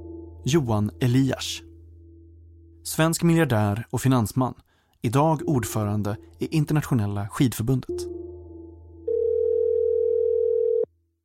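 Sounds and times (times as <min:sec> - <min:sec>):
speech: 0:00.4 - 0:01.7, 0:02.8 - 0:08.1
telephone line tone while calling a number: 0:09.1 - 0:10.9.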